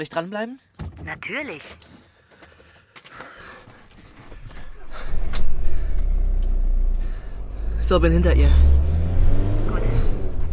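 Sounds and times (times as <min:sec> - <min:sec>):
speech: 0:00.0 - 0:02.0, 0:07.8 - 0:08.9
car engine rumbling as car drives off the property: 0:04.3 - 0:10.5.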